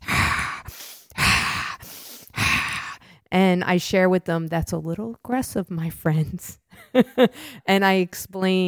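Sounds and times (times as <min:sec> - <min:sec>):
person imitating loud forceful yoga breathing: 0:00.0 - 0:03.2
speech: 0:03.3 - 0:08.6.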